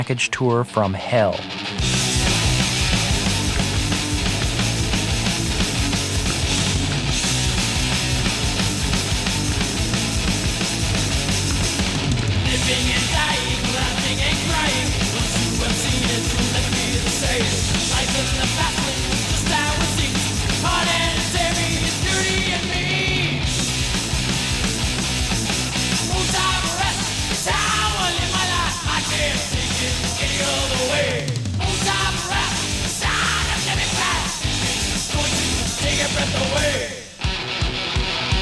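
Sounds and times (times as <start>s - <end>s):
speech: 0.0s - 2.0s
heavy metal band playing live: 0.9s - 38.4s
person shouting vocals: 31.6s - 34.4s.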